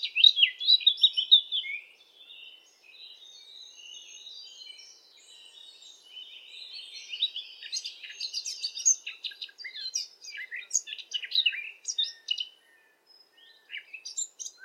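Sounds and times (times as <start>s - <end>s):
Eurasian blackcap song: 0.0s - 14.6s
faint background noise: 0.0s - 14.6s.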